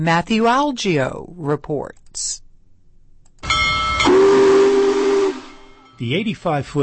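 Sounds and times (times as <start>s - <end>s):
speech: 0.0s - 2.4s, 6.0s - 6.8s
steam locomotive whistle blowing in light rain: 4.0s - 6.0s.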